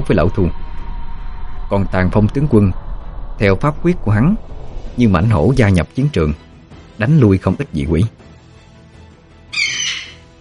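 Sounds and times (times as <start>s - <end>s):
speech: 0.1s - 0.6s, 1.7s - 2.8s, 3.4s - 6.4s, 7.0s - 8.2s
eagle screech: 9.5s - 10.3s.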